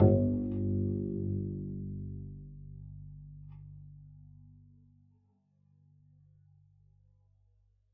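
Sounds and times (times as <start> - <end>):
double bass pizzicato G1: 0.0 - 4.0.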